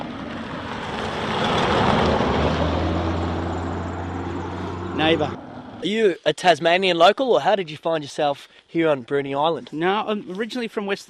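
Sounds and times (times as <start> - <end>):
vehicle engine and tyre noise driving past: 0.0 - 5.8
speech: 5.1 - 11.0.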